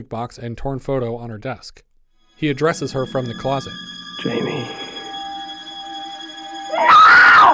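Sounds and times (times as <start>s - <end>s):
speech: 0.0s - 4.8s
thin sustained tone: 2.1s - 7.5s
woman screaming in terror: 6.6s - 7.5s.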